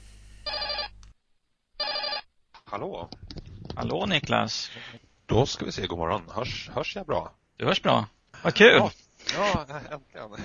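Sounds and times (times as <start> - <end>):
low hum: 0.0 - 1.5
telephone bell ringing: 0.4 - 0.9, 1.8 - 2.3
speech: 2.7 - 10.4.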